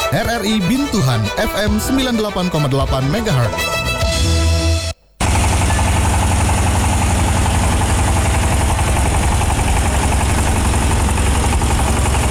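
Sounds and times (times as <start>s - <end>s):
speech: 0.1s - 4.4s
motor droning with rough rattling texture: 5.2s - 12.2s.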